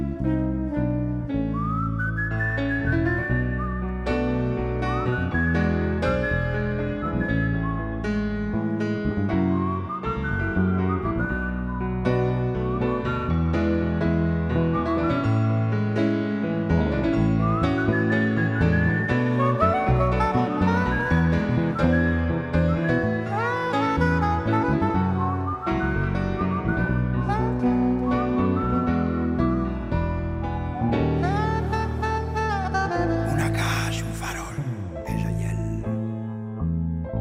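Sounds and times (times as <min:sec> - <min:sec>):
instrumental backing music: 0:00.0 - 0:37.1
person whistling a sliding wavering tune: 0:01.4 - 0:08.8, 0:09.4 - 0:16.0, 0:16.8 - 0:31.8.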